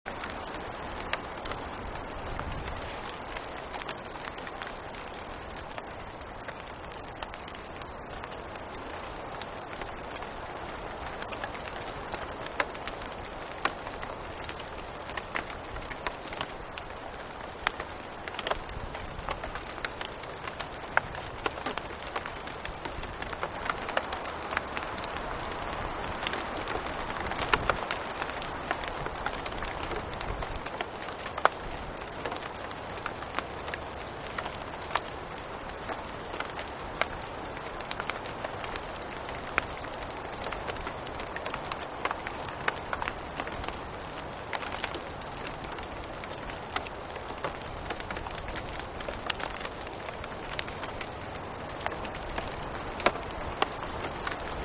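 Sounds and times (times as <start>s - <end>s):
steady rain on leaves: 0.0s - 54.6s.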